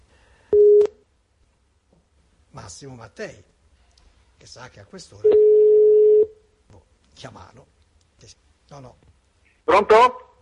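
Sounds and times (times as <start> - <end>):
speech: 2.6 - 3.6, 4.4 - 5.5, 7.2 - 9.1, 9.7 - 10.2
telephone busy tone as a call is placed: 5.3 - 6.3.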